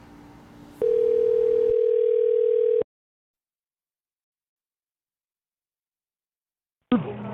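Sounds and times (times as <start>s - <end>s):
telephone line ringing tone heard from the caller's end: 0.8s - 2.9s.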